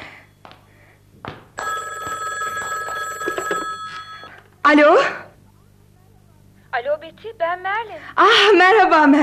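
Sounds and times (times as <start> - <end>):
telephone bell ringing with a metallic trill: 1.6 - 4.5
speech: 4.7 - 5.2, 6.8 - 9.2.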